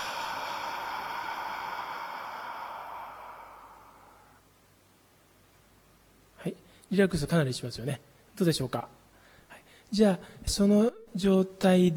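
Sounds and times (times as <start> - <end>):
deep breath in and out during a guided relaxation exercise: 0.0 - 4.6
speech: 6.4 - 9.0, 9.9 - 11.9.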